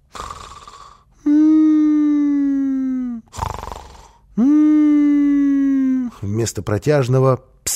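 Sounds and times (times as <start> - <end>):
sleeping man snoring with whimpering moan on the exhale: 0.0 - 6.2
speech: 4.4 - 4.6, 6.2 - 7.5.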